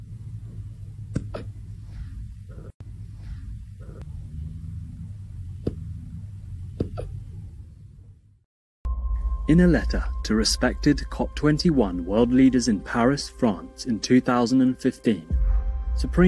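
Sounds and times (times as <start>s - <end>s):
steady low rumbling background: 0.0s - 16.2s
soft hiccups: 1.2s - 1.6s
speech: 9.5s - 15.4s, 16.0s - 16.2s.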